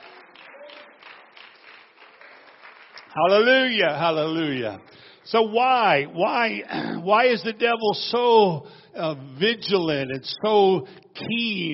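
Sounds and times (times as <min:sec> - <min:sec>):
audience clapping hands: 0:00.0 - 0:05.2
speech: 0:03.1 - 0:11.7.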